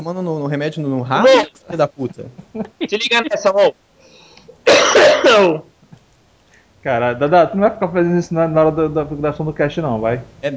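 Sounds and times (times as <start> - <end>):
speech: 0.0 - 3.8, 4.6 - 5.7, 6.8 - 10.5
person coughing: 4.6 - 5.6.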